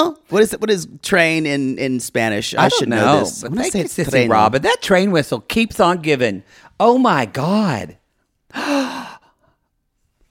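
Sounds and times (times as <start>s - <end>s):
speech: 0.0s - 9.1s
breathy gasp: 8.5s - 9.7s.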